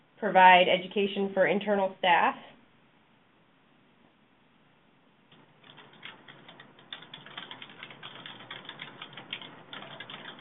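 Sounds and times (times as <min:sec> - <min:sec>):
speech: 0:00.2 - 0:02.6
fast typing on a computer keyboard: 0:05.3 - 0:10.3.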